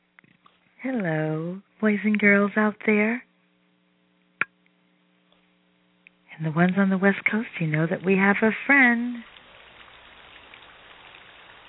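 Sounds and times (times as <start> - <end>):
speech: 0.8 - 3.3, 6.4 - 9.3
steady rain: 6.4 - 11.6.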